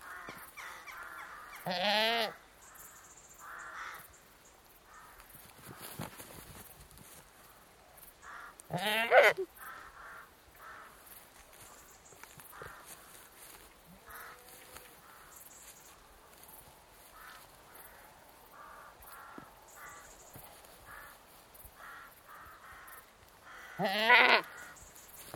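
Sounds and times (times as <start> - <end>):
faint cricket hum: 0.0 - 25.3
annoyed British Saanen goat bleating in a field: 1.6 - 2.4, 8.7 - 9.5, 23.7 - 24.5
speech: 1.6 - 2.4, 8.7 - 9.5.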